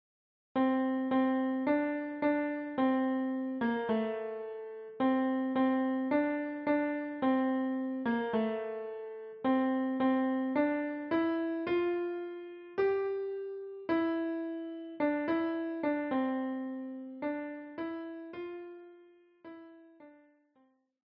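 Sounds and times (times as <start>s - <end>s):
piano piece: 0.6s - 20.3s.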